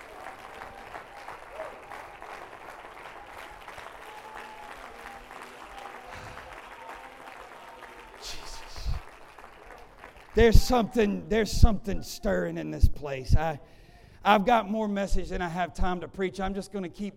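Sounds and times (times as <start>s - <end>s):
congregation clapping hands: 0.0s - 11.1s
speech: 10.4s - 17.1s.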